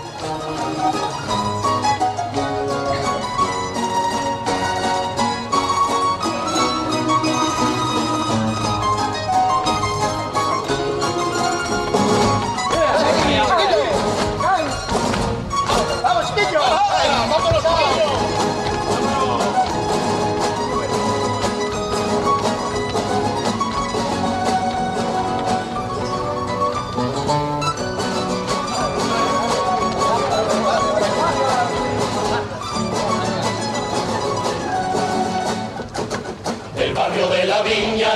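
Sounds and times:
instrumental backing: 0.0s - 38.1s
carnival choir singing a tango: 36.7s - 38.1s.

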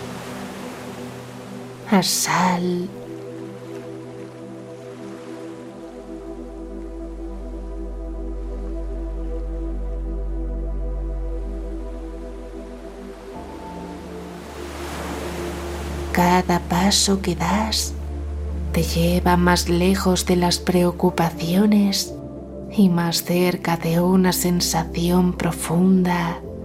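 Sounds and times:
sustained musical drone: 0.0s - 25.7s
ocean surf washing on the shore: 0.0s - 26.6s
speech: 1.9s - 3.0s, 16.3s - 18.0s, 18.8s - 26.5s.

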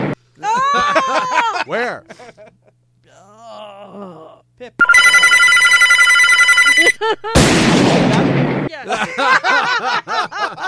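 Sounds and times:
people laughing: 0.4s - 2.8s, 6.7s - 7.4s, 8.8s - 10.6s
speech: 1.0s - 2.6s, 4.0s - 6.2s, 6.8s - 10.6s
telephone bell ringing: 4.8s - 7.0s.

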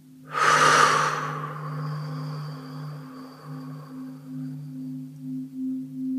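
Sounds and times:
deep breath in and out: 0.3s - 4.5s
low humming drone with soft tones: 0.3s - 6.1s.

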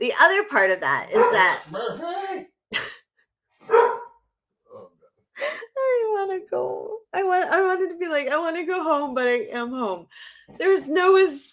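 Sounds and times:
speech: 0.0s - 2.9s, 5.4s - 11.5s
pet dog barking at home: 1.1s - 1.6s, 3.6s - 4.2s.

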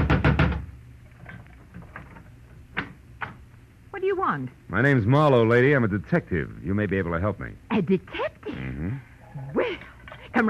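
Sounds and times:
knocking on the wooden front door of a house: 0.0s - 0.7s
speech: 4.1s - 8.4s.

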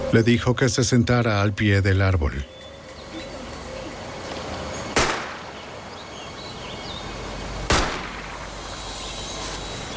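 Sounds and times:
speech: 0.1s - 2.6s
gunshots in a forest: 4.9s - 5.4s, 7.7s - 8.4s.

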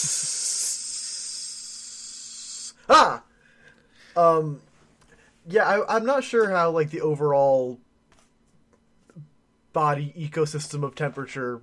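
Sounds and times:
voice imitating food sizzling on a hot pan: 0.0s - 3.2s
speech: 2.9s - 3.2s, 4.2s - 4.7s, 5.5s - 7.8s, 9.2s - 11.6s.

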